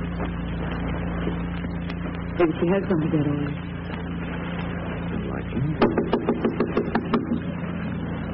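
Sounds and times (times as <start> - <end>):
steady low hum: 0.0 - 8.3
speech: 2.4 - 3.7
firm knocks on a front door: 5.8 - 7.4.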